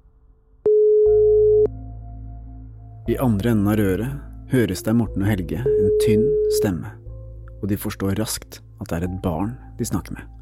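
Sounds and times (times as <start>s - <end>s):
low quiet hum on the phone line: 0.6s - 1.7s
telephone ringback tone while placing a phone call: 0.7s - 1.7s
speech: 3.1s - 7.0s, 7.6s - 10.4s.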